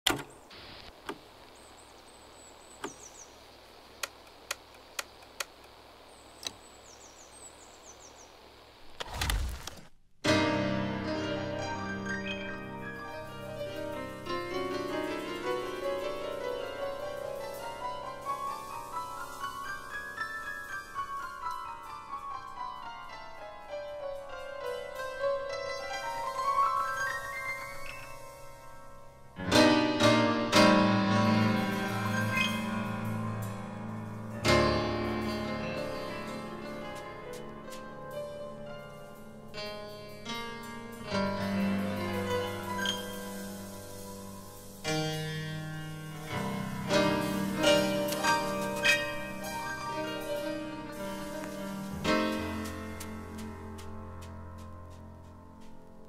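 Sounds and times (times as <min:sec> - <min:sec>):
Latin jazz and jazz-funk fusion music: 0:10.3 - 0:28.4, 0:29.4 - 0:56.0.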